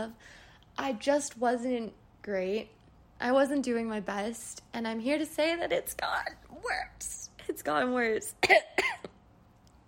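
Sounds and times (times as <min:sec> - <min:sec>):
speech: 0:00.0 - 0:09.0
person forced coughing: 0:08.4 - 0:09.2.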